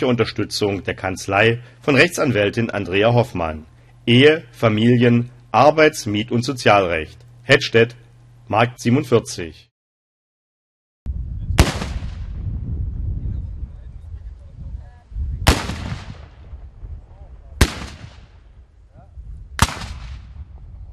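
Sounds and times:
speech: 0:00.0 - 0:09.7
black powder salute cannon shots: 0:11.6 - 0:12.4, 0:15.4 - 0:16.7, 0:17.6 - 0:18.5, 0:19.6 - 0:20.5.

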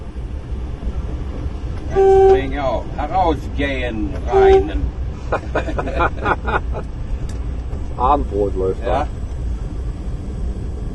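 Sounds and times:
diesel locomotive rumble: 0:00.0 - 0:10.9
diesel locomotive signal horn: 0:01.9 - 0:02.6, 0:04.2 - 0:04.9
speech: 0:01.9 - 0:07.0, 0:08.0 - 0:09.2
laughter: 0:05.2 - 0:06.9.

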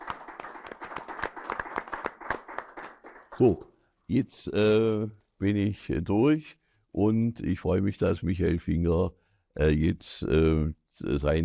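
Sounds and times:
crowd applauding: 0:00.0 - 0:03.6
speech: 0:03.4 - 0:11.4.

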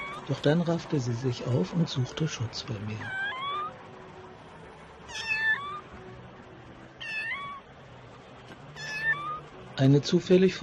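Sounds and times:
small cat meowing: 0:00.0 - 0:00.3, 0:03.0 - 0:03.8, 0:05.1 - 0:06.0, 0:07.0 - 0:07.7, 0:08.8 - 0:09.5
speech: 0:00.3 - 0:03.3, 0:09.8 - 0:10.6.

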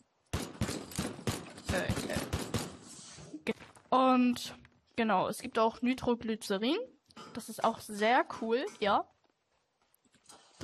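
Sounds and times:
video game gunfire from in-game weapons including a shotgun-style pistol: 0:00.3 - 0:03.1
speech: 0:03.5 - 0:09.1.

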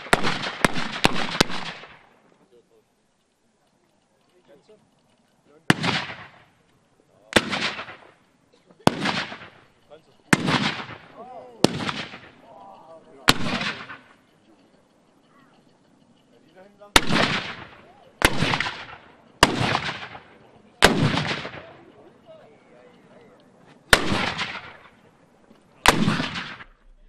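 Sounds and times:
black powder cannon shots at a cannon demonstration: 0:00.0 - 0:02.2, 0:05.6 - 0:06.6, 0:07.3 - 0:08.2, 0:08.8 - 0:09.7, 0:10.3 - 0:12.5, 0:13.2 - 0:14.2, 0:16.9 - 0:21.8, 0:23.9 - 0:25.0, 0:25.8 - 0:27.0
faint voices: 0:02.1 - 0:25.9, 0:26.6 - 0:27.0.

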